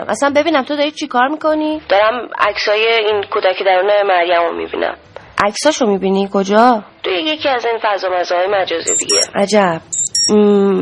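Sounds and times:
speech: 0:00.0 - 0:10.7
longer low buzzing beep from a phone's eye scanner: 0:08.9 - 0:09.3, 0:09.9 - 0:10.4
high-pitched electronic chirps from a phone's eye scanner: 0:08.9 - 0:10.4.

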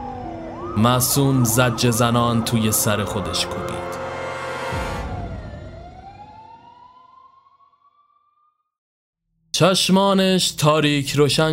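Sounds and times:
police car sirens wailing: 0:00.0 - 0:07.7
speech: 0:00.8 - 0:04.0, 0:09.6 - 0:11.5.

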